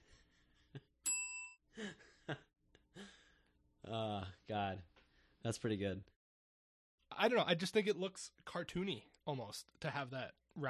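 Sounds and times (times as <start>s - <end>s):
bell ding sound effect: 1.0s - 1.6s
speech: 1.8s - 2.5s, 3.9s - 6.2s, 7.2s - 10.6s.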